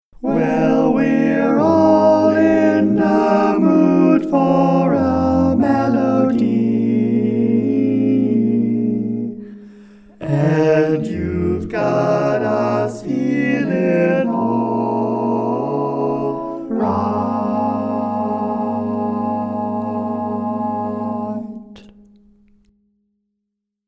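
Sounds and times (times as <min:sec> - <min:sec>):
barbershop tags sung by all parts: 0:00.2 - 0:08.8, 0:10.1 - 0:21.8.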